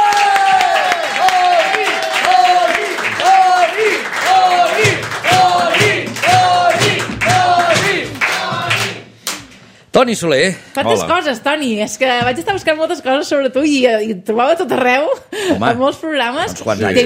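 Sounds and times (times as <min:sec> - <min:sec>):
studio audience applause: 0:00.0 - 0:09.0
speech: 0:10.0 - 0:17.0.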